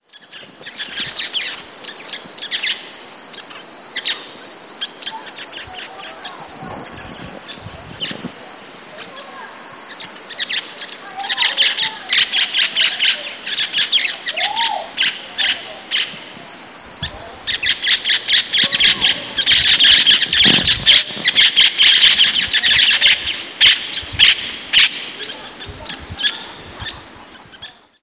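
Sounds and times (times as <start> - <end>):
Pionus maximiliani parrot calling: 10.4 - 16.2, 17.0 - 28.0.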